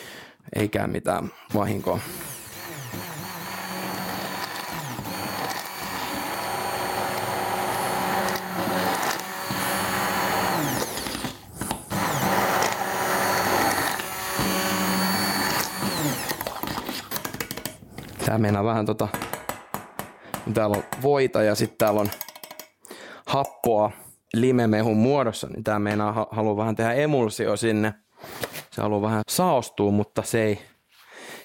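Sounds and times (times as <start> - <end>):
speech: 0.5 - 2.2, 18.3 - 19.2, 20.5 - 22.2, 23.3 - 28.0, 28.8 - 30.7
blender running, blending hot sauce: 1.4 - 17.2.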